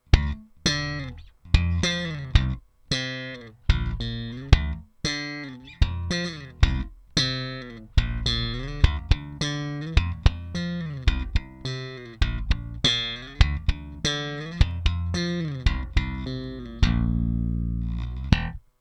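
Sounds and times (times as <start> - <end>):
slap bass through a bass amplifier: 0.0 - 18.7.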